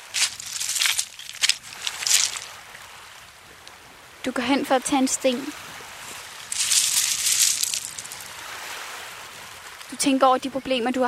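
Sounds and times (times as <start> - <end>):
footsteps crunching over loose stones by the water: 0.0 - 2.6, 6.1 - 8.3
speech: 4.2 - 5.7, 10.0 - 11.0.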